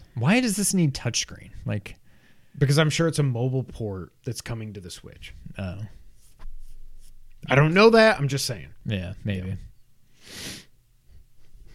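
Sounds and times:
speech: 0.2 - 2.0, 2.6 - 6.0, 7.4 - 9.7
person sniffing: 10.2 - 10.7.

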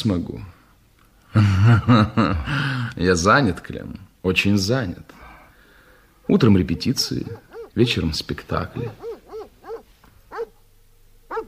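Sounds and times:
speech: 0.0 - 0.6, 1.3 - 5.2, 6.3 - 9.1
faint low hum: 0.0 - 11.4
dogs barking: 6.2 - 10.6, 11.3 - 11.4.

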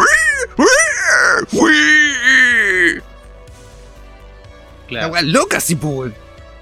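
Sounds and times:
person imitating a pig's orgasm sounds with groaning squeals: 0.0 - 3.0
speech: 4.9 - 6.3.

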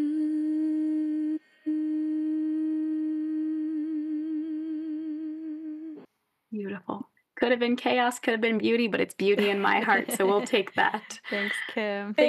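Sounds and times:
three people humming one sustained shared note: 0.0 - 6.0
speech: 6.5 - 12.2.

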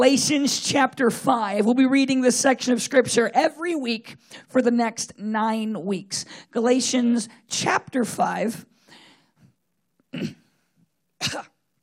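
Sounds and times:
speech: 0.0 - 8.7, 10.1 - 10.4
person clearing throat with soft rasps: 10.1 - 10.5, 11.2 - 11.6
person coughing harshly: 10.1 - 10.6, 11.2 - 11.6.

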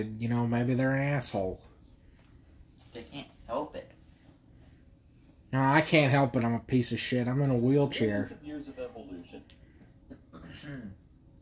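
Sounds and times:
speech: 0.0 - 1.7, 5.5 - 9.6, 10.5 - 11.0
person giving short throaty coughs: 10.1 - 11.0.

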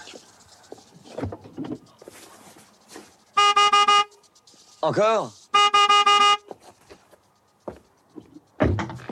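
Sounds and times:
car horn honking in long loud blasts: 3.4 - 4.2, 5.5 - 6.6
speech: 4.8 - 5.4.

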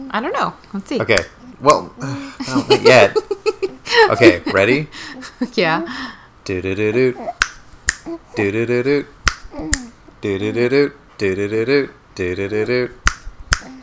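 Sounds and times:
speech: 0.1 - 3.3, 3.9 - 7.3, 8.4 - 13.0
laughter: 2.4 - 5.5
person humming or singing sustained tones: 6.4 - 13.8
finger snaps: 7.4 - 8.1, 9.2 - 9.9, 13.0 - 13.8.

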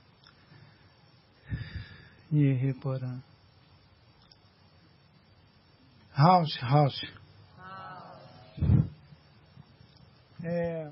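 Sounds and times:
soft quiet breathing with a faint airy hiss: 0.3 - 2.3
speech: 2.3 - 3.3, 6.2 - 7.2.

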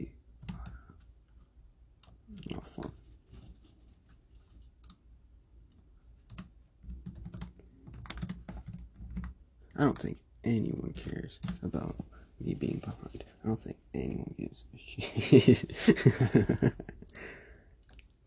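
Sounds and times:
typing on a computer keyboard: 0.4 - 1.0, 4.4 - 5.0, 6.2 - 9.4
speech: 9.8 - 17.4
laughter: 15.0 - 17.0.

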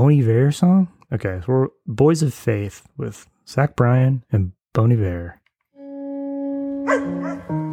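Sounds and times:
speech: 0.0 - 5.4
dog barking: 6.8 - 7.6.

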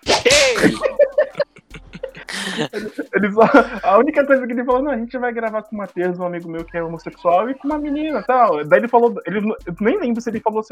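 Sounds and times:
whip crack sound effect with swishing tail: 0.0 - 0.7
voices chattering and chuckling: 0.5 - 3.8
speech: 0.6 - 0.9, 2.6 - 10.7.

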